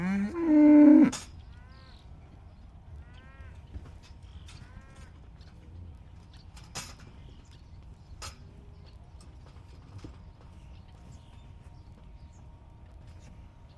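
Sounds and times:
cow giving a loud low moo by a roadside pasture: 0:00.0 - 0:01.3.

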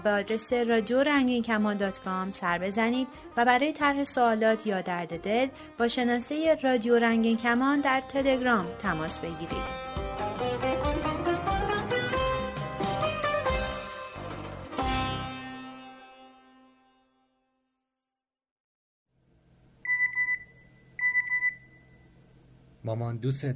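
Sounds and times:
speech: 0:00.0 - 0:09.9, 0:22.9 - 0:23.5
music: 0:00.0 - 0:17.9
telephone ringing with short electronic ring bursts: 0:19.9 - 0:22.0.

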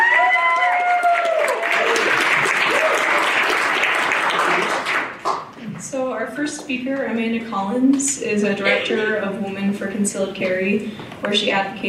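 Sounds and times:
raised voices or cheers: 0:00.0 - 0:05.0
crowd applause: 0:00.0 - 0:05.5
speech: 0:06.4 - 0:11.8.

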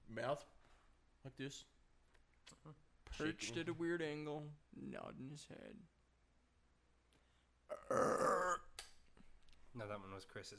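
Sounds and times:
speech: 0:00.1 - 0:00.6, 0:01.2 - 0:01.7, 0:02.5 - 0:06.0, 0:07.7 - 0:08.2, 0:09.8 - 0:10.5
long loud strained belch: 0:07.7 - 0:08.7.

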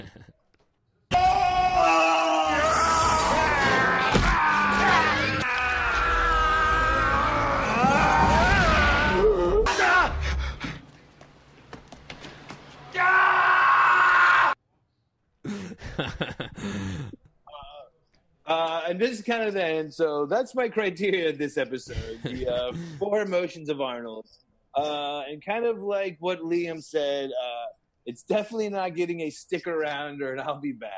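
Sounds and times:
man screaming and yelling in film clips: 0:01.1 - 0:10.3, 0:12.9 - 0:14.6
speech: 0:19.2 - 0:30.9.

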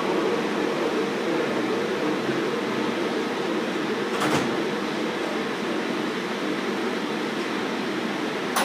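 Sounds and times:
steady broadband hum of an airport train car interior: 0:00.0 - 0:08.6
airport train sliding doors shutting with a clunk: 0:04.0 - 0:04.8.

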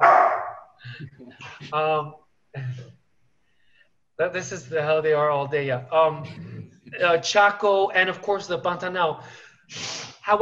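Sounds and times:
dogs barking and yelping while playing: 0:00.0 - 0:00.7
speech: 0:01.0 - 0:03.0, 0:04.2 - 0:10.4.

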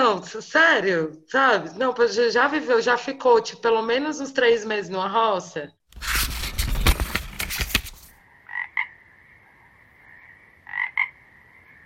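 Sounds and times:
speech: 0:00.1 - 0:06.4
loud rough scraping rush of noise: 0:06.0 - 0:08.1
frog croaking: 0:08.2 - 0:11.8.

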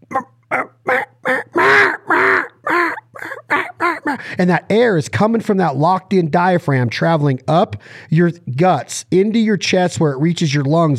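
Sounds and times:
human voice imitating a hen mallard duck's quack: 0:00.0 - 0:04.2
speech: 0:04.4 - 0:10.9.

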